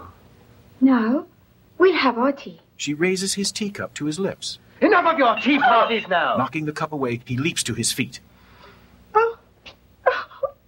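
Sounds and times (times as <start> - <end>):
speech: 0.8 - 8.3
woman sobbing: 5.4 - 6.2, 10.0 - 10.6.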